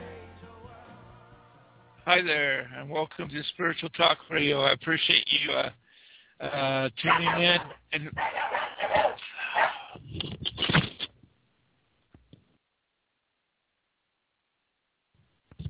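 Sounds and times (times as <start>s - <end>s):
speech: 2.1s - 5.8s, 6.4s - 9.1s
dog barking: 7.1s - 10.0s.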